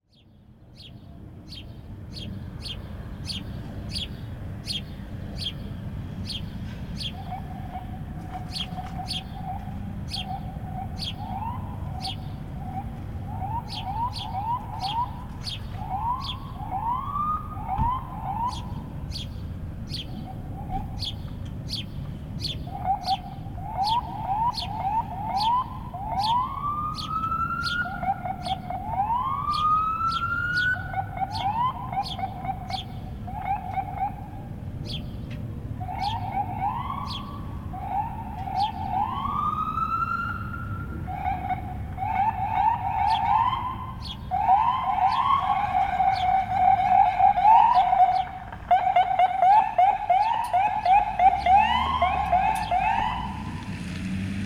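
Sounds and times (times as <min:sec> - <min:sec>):
bird calling: 0:01.5 - 0:39.6, 0:41.0 - 0:53.5
siren: 0:07.1 - 0:19.3, 0:22.6 - 0:35.0, 0:35.7 - 0:54.4.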